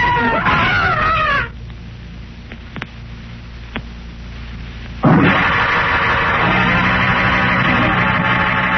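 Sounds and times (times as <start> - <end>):
loud sustained screaming: 0.0 - 1.6, 5.0 - 8.7
low hum: 0.0 - 8.7.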